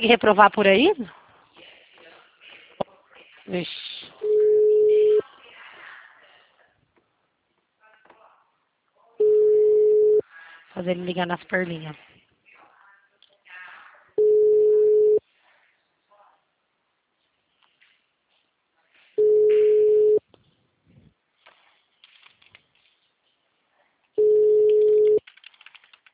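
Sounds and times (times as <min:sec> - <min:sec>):
speech: 0:00.0 - 0:01.2, 0:03.5 - 0:04.3, 0:10.8 - 0:12.1
telephone busy signal: 0:04.2 - 0:05.2, 0:09.2 - 0:10.2, 0:14.2 - 0:15.2, 0:19.2 - 0:20.2, 0:24.2 - 0:25.2.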